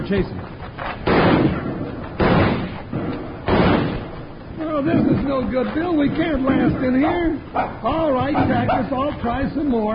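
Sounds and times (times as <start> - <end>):
speech: 0.1 - 0.6, 4.8 - 9.9
rifle shots in a western shootout: 0.8 - 5.2.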